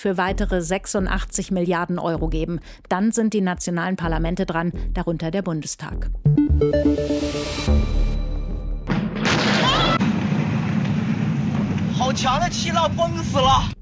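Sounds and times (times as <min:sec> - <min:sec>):
speech: 0:00.0 - 0:08.1, 0:12.0 - 0:13.8
heavy explosion at a port: 0:08.9 - 0:12.2.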